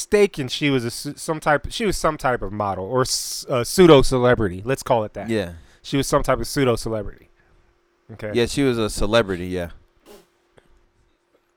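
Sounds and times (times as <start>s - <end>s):
speech: 0.0s - 7.3s, 8.1s - 9.8s
faint steady hum: 0.0s - 11.5s
person sneezing: 10.0s - 10.4s.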